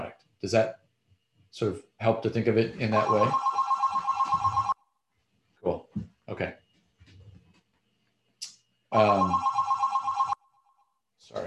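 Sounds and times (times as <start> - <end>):
speech: 0.4 - 0.8, 1.5 - 3.5, 8.9 - 9.5
office desk telephone ringing: 2.9 - 4.8, 9.0 - 10.4.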